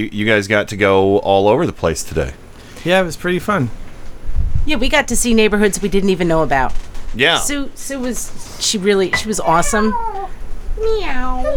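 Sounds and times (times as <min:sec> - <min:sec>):
speech: 0:00.0 - 0:03.8, 0:04.7 - 0:11.5
cat meowing: 0:09.2 - 0:11.5.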